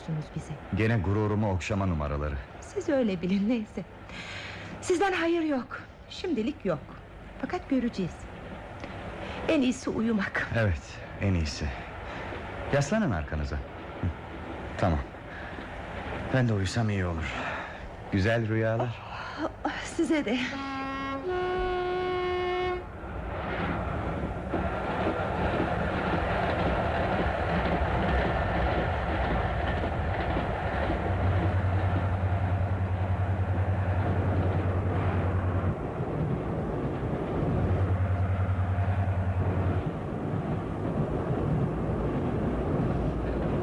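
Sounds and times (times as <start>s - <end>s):
train rolling along tracks with rumbling clatter: 0.0s - 43.6s
speech: 0.1s - 8.3s, 9.5s - 11.8s, 12.7s - 14.2s, 14.8s - 15.1s, 16.3s - 17.5s, 18.1s - 20.7s
brief tonal train whistle: 20.5s - 22.9s.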